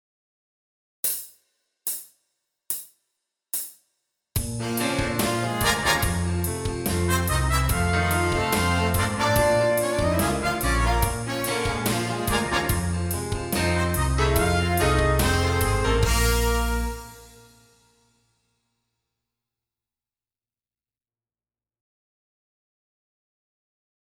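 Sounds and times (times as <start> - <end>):
rhythmic music: 4.4 - 17.5.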